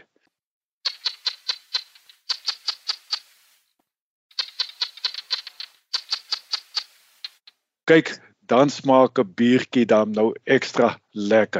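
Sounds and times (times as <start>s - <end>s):
common barking gecko calling: 0.8s - 3.6s, 4.3s - 7.6s
speech: 7.9s - 11.5s.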